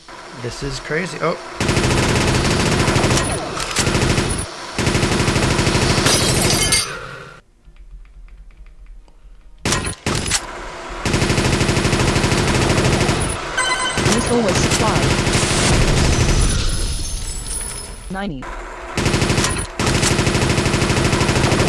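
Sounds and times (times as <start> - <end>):
speech: 0.4 - 2.0, 18.2 - 18.6
speed machine gun fire in a video game: 1.6 - 6.1, 9.6 - 17.2, 18.4 - 21.6.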